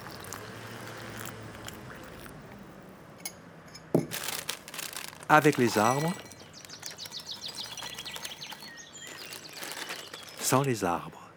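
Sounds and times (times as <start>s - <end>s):
steady soft hum: 0.0s - 11.3s
several birds chirping and singing: 4.2s - 11.0s
speech: 5.3s - 6.3s, 10.5s - 11.2s.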